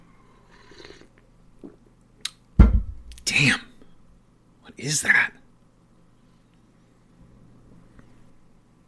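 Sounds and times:
person sipping a drink with a wet slurp: 0.4s - 2.4s
speech: 4.8s - 5.4s.

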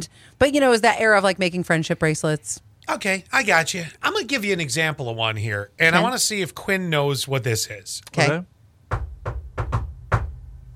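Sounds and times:
speech: 0.0s - 9.4s
sharp knocks on a door: 8.9s - 10.7s.

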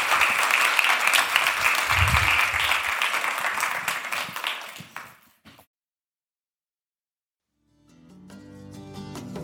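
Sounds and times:
audience round of applause in a room: 0.0s - 5.3s.

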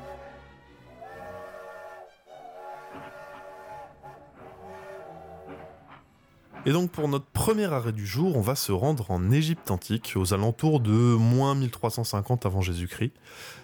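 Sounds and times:
train whistle blasts as train departs: 0.0s - 6.1s
speech: 6.6s - 13.6s.

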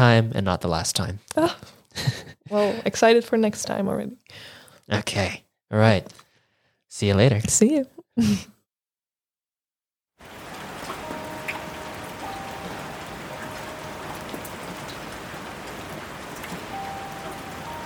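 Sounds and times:
speech: 0.0s - 6.2s, 6.9s - 8.5s
steady rain pattering on a surface: 10.2s - 17.8s.

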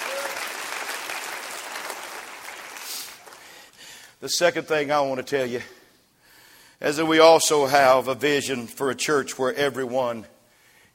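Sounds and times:
roomful of people clapping together: 0.0s - 3.8s
speech: 4.2s - 5.8s, 6.8s - 10.3s.

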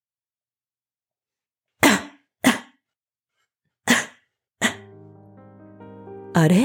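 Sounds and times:
woman coughing: 1.8s - 2.8s, 3.9s - 4.9s
speech: 6.4s - 6.6s.

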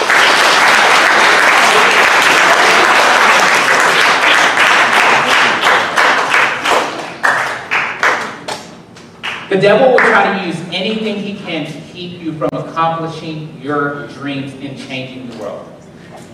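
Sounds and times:
audience applause: 0.0s - 8.6s
speech: 9.5s - 15.7s.

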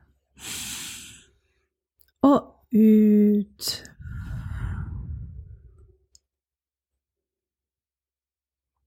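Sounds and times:
long deep breath drawn in: 0.4s - 1.5s, 3.8s - 6.0s
speech: 2.2s - 3.9s.

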